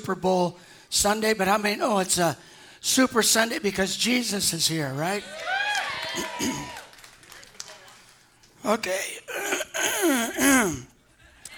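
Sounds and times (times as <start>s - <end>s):
speech: 0.0s - 6.8s, 8.6s - 10.9s
throat clearing: 6.4s - 6.8s, 9.3s - 11.0s.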